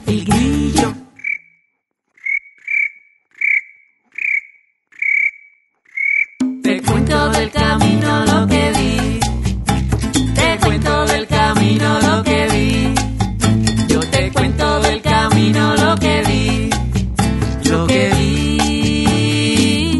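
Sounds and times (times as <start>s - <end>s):
bursts of music: 0.0s - 1.1s, 6.4s - 19.9s
cricket chirping in short bright pulses: 1.2s - 1.6s, 2.2s - 6.4s.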